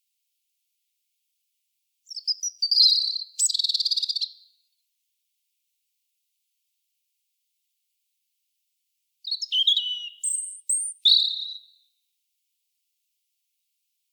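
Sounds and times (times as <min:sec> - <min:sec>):
European robin Erithacus rubecula singing: 0:02.1 - 0:04.4, 0:09.2 - 0:11.8.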